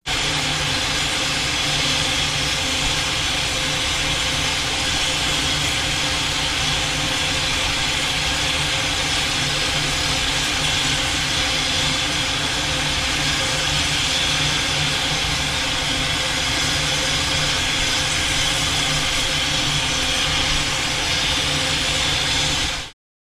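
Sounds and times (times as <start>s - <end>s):
steam train blowing down steam: 0.0s - 23.0s.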